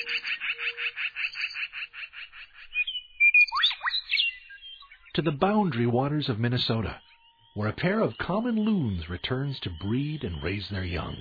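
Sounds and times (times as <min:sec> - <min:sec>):
black-billed magpies calling in a canyon: 0:00.0 - 0:05.1
mourning doves calling in a canyon: 0:00.0 - 0:11.2
western meadowlarks calling in a canyon: 0:00.0 - 0:11.2
speech: 0:05.2 - 0:07.0, 0:07.6 - 0:11.2.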